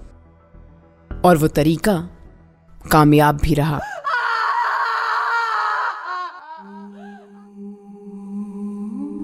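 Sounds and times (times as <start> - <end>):
speech: 1.2 - 2.2, 2.8 - 3.9
girl screaming on the 25th floor of a thirty-storey building: 3.8 - 7.1.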